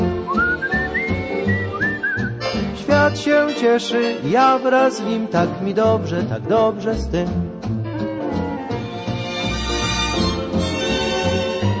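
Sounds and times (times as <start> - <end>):
low musical accompaniment: 0.0 - 11.7
person whistling a cheerful melody: 0.2 - 2.5
speech: 3.1 - 7.5.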